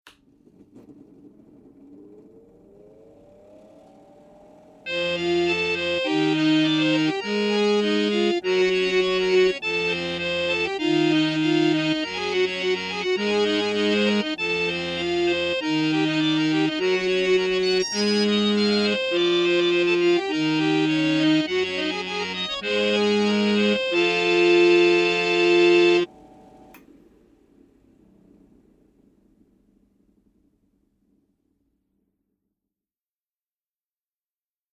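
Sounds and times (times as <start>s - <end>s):
wind organ: 2.9s - 26.8s.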